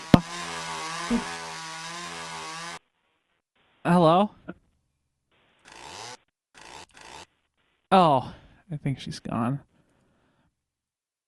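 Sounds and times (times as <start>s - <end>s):
chainsaw engine running ready to cut: 0.0s - 3.9s, 5.3s - 7.9s
speech: 1.1s - 1.4s, 8.7s - 9.7s.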